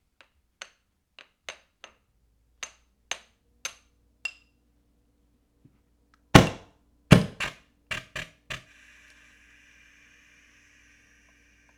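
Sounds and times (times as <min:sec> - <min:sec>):
automag gas gun firing: 0:06.4 - 0:08.7.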